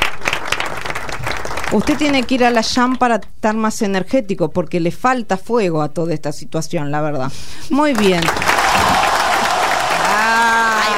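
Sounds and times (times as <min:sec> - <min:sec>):
audience applause: 0:00.0 - 0:02.6, 0:08.0 - 0:10.9
speech: 0:01.7 - 0:09.0.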